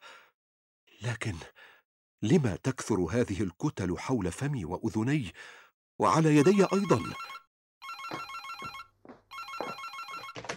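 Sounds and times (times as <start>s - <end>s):
speech: 1.0s - 7.4s
telephone ringing with a warbling electronic trill: 6.4s - 10.5s.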